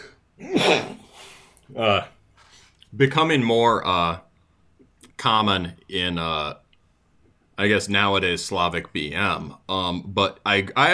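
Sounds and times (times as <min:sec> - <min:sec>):
sneeze: 0:00.4 - 0:01.0
speech: 0:01.8 - 0:02.1, 0:03.0 - 0:04.3, 0:05.2 - 0:06.6, 0:07.6 - 0:10.9.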